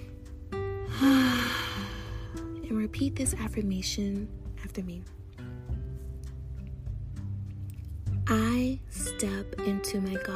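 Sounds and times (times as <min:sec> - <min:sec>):
gentle sustained music tones: 0:00.0 - 0:10.3
deep breath in and out during a relaxation exercise: 0:00.9 - 0:02.5
speech: 0:02.9 - 0:05.2, 0:08.3 - 0:10.3.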